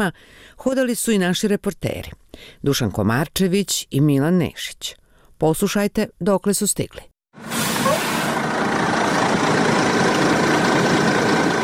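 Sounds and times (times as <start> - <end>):
speech: 0.0 - 7.5
hissing airy upper layer of bus engine: 7.4 - 8.4
bus engine idling as it stops: 7.4 - 11.6.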